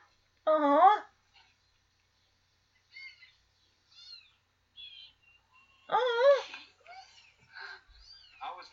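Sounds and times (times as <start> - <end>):
speech: 0.5 - 0.8
kittens meowing: 2.9 - 8.4.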